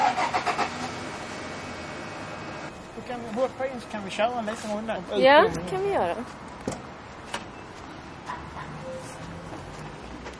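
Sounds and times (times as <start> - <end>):
starter motor of an electric mail-delivery car in a hospital area: 0.0 - 2.7
speech: 3.1 - 6.5.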